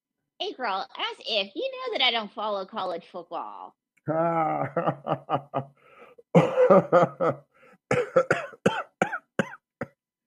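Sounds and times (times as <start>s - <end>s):
speech: 0.4s - 8.4s
laughter: 4.1s - 5.7s, 6.4s - 7.4s
throat clearing: 6.4s - 7.0s, 7.9s - 10.0s
person coughing: 6.4s - 10.0s.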